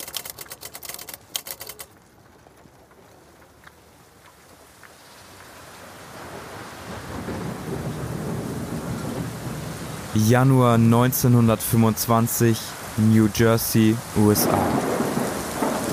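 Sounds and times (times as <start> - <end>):
rapid sharp clicking: 0.0 - 2.0
heavy raindrops falling on cobblestone pavement: 0.0 - 15.9
speech: 10.2 - 14.8.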